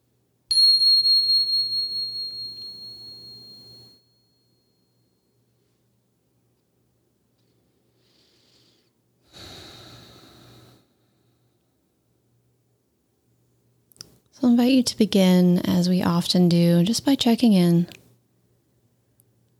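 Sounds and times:
meditation bell struck, bright ringing tone: 0.5 - 4.5
speech: 14.4 - 18.0.

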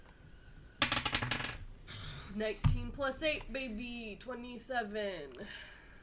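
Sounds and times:
dice rolled for a tabletop role-playing perception check: 0.8 - 1.6
speech: 2.4 - 5.8.

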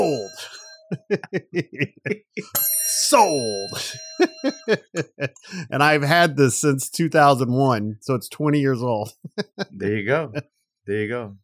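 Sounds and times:
laughter: 0.0 - 2.5, 3.7 - 5.8, 9.1 - 10.4
speech: 0.2 - 11.4
small bell struck: 2.6 - 4.8.

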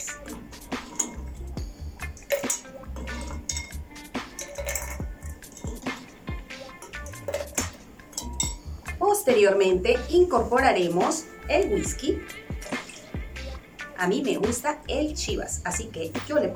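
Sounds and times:
ice cubes dropped into a stemmed glass: 0.0 - 8.8, 12.5 - 13.2
speech: 9.3 - 12.4, 14.0 - 16.5.

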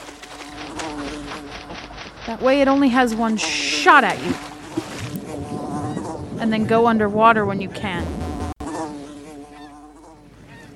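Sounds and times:
video game wasp buzzing: 0.0 - 6.8, 8.0 - 10.3
speech: 2.3 - 4.5, 6.4 - 8.2.

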